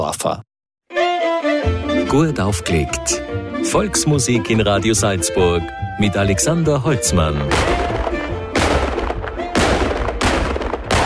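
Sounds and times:
speech: 0:00.0 - 0:00.5, 0:01.6 - 0:08.0
ceremonial gun salute blasts fired by traditional marksmen: 0:07.4 - 0:11.0.

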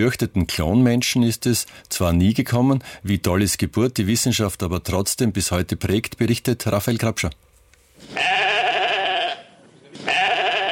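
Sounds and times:
speech: 0:00.0 - 0:08.5
sheep bleating: 0:08.1 - 0:10.6.

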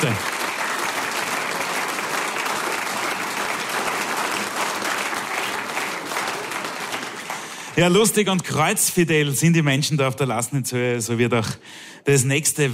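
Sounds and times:
speech: 0:00.0 - 0:00.3, 0:07.8 - 0:12.7
sizable audience applauding: 0:00.0 - 0:08.2.

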